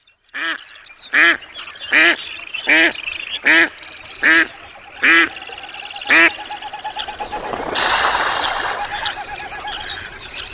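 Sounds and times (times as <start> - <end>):
ducks quacking: 0.4 - 10.5
ducks landing on a pond with a rushing splash: 6.1 - 10.2.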